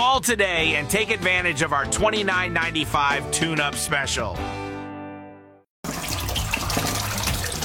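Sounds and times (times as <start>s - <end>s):
speech: 0.2s - 4.6s
water running down a drain: 5.9s - 7.6s.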